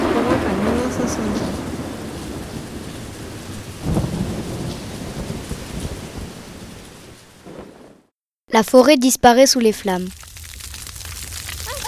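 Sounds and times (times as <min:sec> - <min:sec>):
deep thunder crack with rolling thunder: 0:00.0 - 0:08.1
steady thunderstorm rain hiss: 0:00.0 - 0:08.1, 0:09.4 - 0:11.8
speech: 0:08.5 - 0:10.2.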